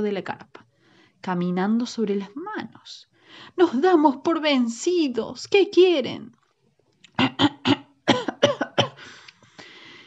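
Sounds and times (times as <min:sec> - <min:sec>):
speech: 0:00.0 - 0:00.6, 0:01.2 - 0:06.4, 0:07.2 - 0:07.8
raspy throat clearing: 0:07.1 - 0:09.0
person coughing: 0:07.2 - 0:09.1.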